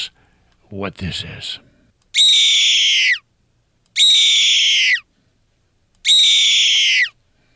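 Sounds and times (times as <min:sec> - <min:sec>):
speech: 0:00.7 - 0:01.7
red-tailed hawk screams: 0:02.2 - 0:03.2, 0:04.0 - 0:05.1, 0:06.1 - 0:07.2.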